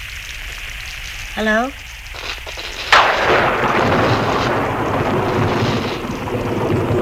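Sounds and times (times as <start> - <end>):
speech: 1.4 - 1.8
thunder: 2.7 - 6.9.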